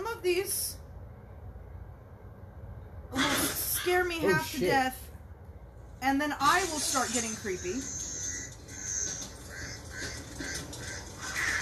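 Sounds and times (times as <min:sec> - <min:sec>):
constant hiss: 0:00.0 - 0:11.5
speech: 0:00.2 - 0:00.8, 0:03.8 - 0:05.0, 0:06.0 - 0:08.0
crows cawing outdoors: 0:07.8 - 0:11.5.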